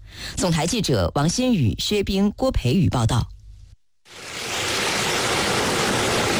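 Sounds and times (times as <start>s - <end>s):
speech: 0.4s - 3.4s
Yarkand River water rushing through a rising electronic sluice gate: 4.1s - 6.3s.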